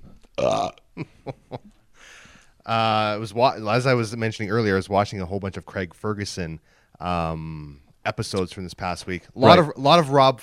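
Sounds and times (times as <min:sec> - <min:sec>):
loud drawn-out burp with a rough low tone: 0:00.3 - 0:01.1
speech: 0:00.6 - 0:01.4, 0:02.7 - 0:10.4.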